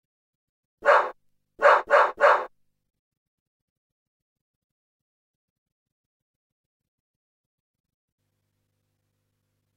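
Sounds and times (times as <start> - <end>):
dog barking: 0.8 - 2.5.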